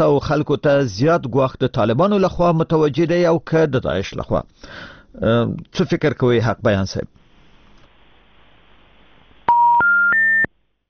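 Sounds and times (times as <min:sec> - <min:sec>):
speech: 0:00.0 - 0:07.2
faint telephone line noise: 0:07.2 - 0:09.5
rising telephone tones after a phone line is cut off: 0:09.4 - 0:10.5.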